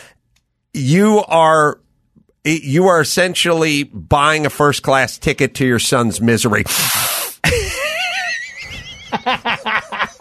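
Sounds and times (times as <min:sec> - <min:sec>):
speech: 0:00.8 - 0:01.8, 0:02.4 - 0:07.6
loud sharp inhale squealing through the throat: 0:06.7 - 0:07.4
laughter: 0:07.5 - 0:10.1.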